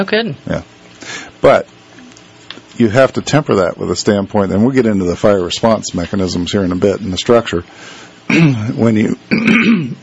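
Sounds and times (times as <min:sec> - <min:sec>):
speech: 0:00.0 - 0:01.8, 0:02.8 - 0:10.0
person clearing throat with a cough: 0:08.3 - 0:10.0.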